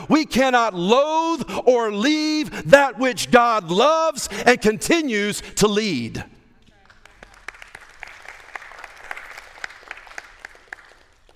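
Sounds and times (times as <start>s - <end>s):
speech: 0.1s - 6.4s
thin scattered audience applause: 6.6s - 11.3s.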